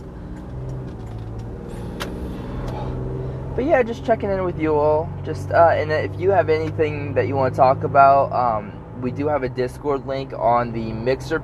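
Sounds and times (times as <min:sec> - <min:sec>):
cars rumbling past on a street: 0:00.0 - 0:09.7
continuous low engine drone: 0:00.0 - 0:11.4
hissing swooshes of vehicles passing: 0:01.6 - 0:03.6
speech: 0:03.6 - 0:11.4.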